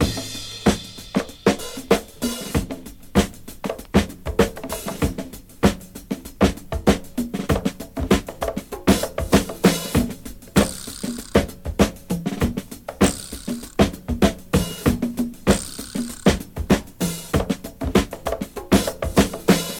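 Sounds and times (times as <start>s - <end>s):
97 bpm house drum loop in E with kick tuned to E: 0.0s - 19.7s.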